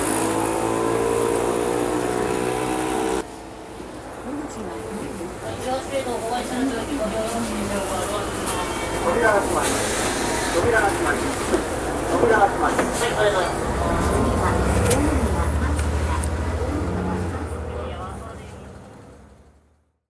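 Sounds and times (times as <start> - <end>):
street noise: 0.0 - 19.9
bus engine rumbling while pulling up at a bus stop: 4.2 - 19.8
bus air brakes hissing: 9.6 - 10.6.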